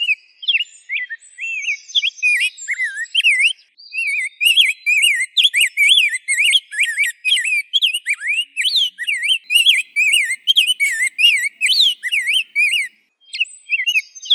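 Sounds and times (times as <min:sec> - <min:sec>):
rose-breasted grosbeak singing: 0:00.5 - 0:14.3.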